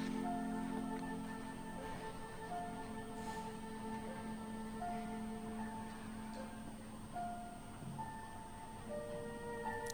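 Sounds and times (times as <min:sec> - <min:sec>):
slow quiet music in a stage performance: 0:00.0 - 0:09.9.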